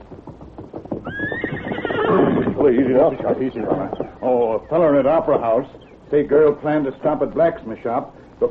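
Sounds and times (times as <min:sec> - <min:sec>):
horse clopping hoofbeats: 0:00.0 - 0:07.6
horse whinnying: 0:00.9 - 0:04.6
speech: 0:02.6 - 0:08.4.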